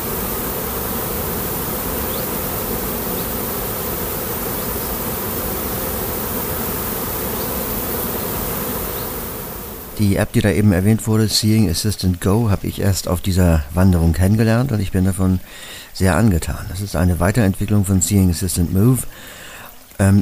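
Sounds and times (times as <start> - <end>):
many bees buzzing at beehives: 0.0 - 10.2
speech: 10.0 - 19.4, 20.0 - 20.2.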